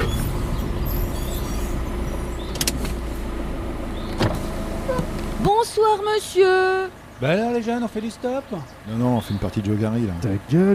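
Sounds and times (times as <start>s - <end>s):
car engine idling: 0.0s - 10.7s
power window rolling down: 2.4s - 3.1s, 4.0s - 5.4s
speech: 5.7s - 10.7s.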